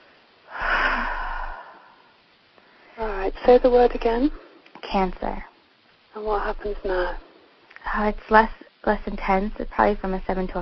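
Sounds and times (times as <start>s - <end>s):
single deep breath drawn in and let out: 0.5s - 3.0s
speech: 3.0s - 5.5s, 6.2s - 10.6s.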